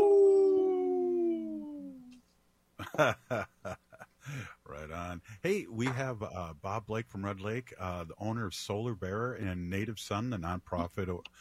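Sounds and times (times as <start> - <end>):
wolf howling: 0.0 - 2.0
human voice: 0.0 - 2.2
speech: 3.0 - 11.3.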